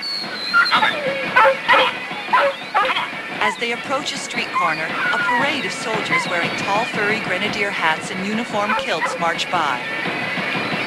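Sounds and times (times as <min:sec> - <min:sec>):
dog on a leash in the street whimpering and yipping while pulling: 0:00.5 - 0:03.1, 0:08.7 - 0:09.2
speech: 0:03.5 - 0:10.2.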